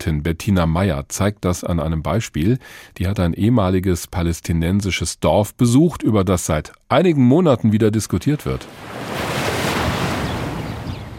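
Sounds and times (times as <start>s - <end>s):
speech: 0.0s - 9.4s
gentle Mediterranean waves washing onto a sandy beach south of Haifa: 8.6s - 11.1s
soft rush of wind: 8.6s - 11.1s.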